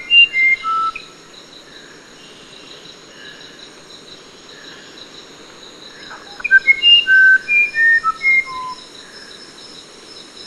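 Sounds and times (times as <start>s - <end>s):
musician wren singing flute-like whistles: 0.0s - 1.1s, 6.0s - 9.3s.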